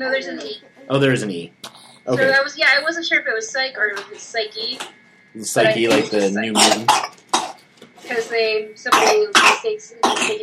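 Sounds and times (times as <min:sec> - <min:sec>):
speech: 0:00.0 - 0:07.2, 0:08.1 - 0:10.4
baby coughing fit: 0:05.9 - 0:07.6, 0:08.9 - 0:10.4.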